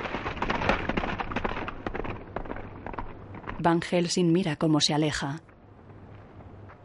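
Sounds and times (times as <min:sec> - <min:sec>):
horse-drawn hearse carriage wheels rumbling: 0:00.0 - 0:03.9
horse hooves clattering over a hard surface: 0:00.0 - 0:04.0
speech: 0:03.6 - 0:05.5.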